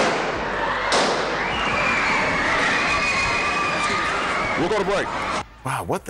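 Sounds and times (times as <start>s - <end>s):
single sharp gunshot in a high school gymnasium: 0.0s - 1.4s
high-pitched screams and shouting: 0.0s - 5.5s
noisy indoor crowd in a high school gymnasium: 0.0s - 6.0s
speech: 4.6s - 6.0s.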